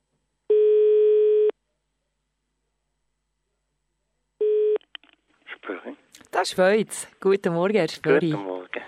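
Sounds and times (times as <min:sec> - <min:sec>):
telephone ringback tone: 0:00.5 - 0:01.5, 0:04.4 - 0:04.8
speech: 0:05.8 - 0:08.5.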